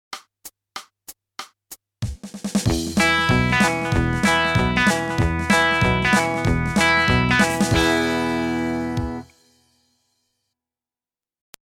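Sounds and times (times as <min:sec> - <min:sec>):
country music: 0:02.7 - 0:09.4.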